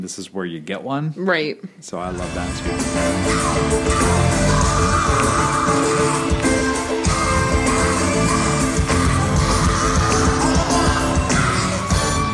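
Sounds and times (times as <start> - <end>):
speech: 0.0 - 6.6
loud dense live band playing: 2.1 - 12.3
concert crowd noise and yells: 2.8 - 12.3
singer screaming at a live concert: 3.1 - 12.3.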